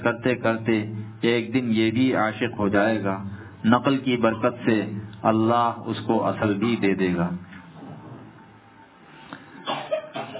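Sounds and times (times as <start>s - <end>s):
speech: 0.0s - 7.5s
person with a severe cough coughing: 9.6s - 10.3s.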